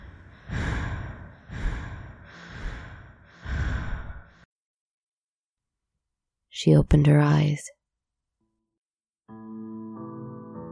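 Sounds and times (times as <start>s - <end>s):
slow heavy breathing with a sighing quality: 0.0s - 4.5s
speech: 6.6s - 7.8s.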